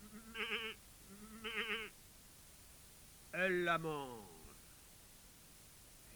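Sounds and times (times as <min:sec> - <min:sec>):
old goat bleating: 0:00.0 - 0:01.9
speech: 0:03.4 - 0:04.3.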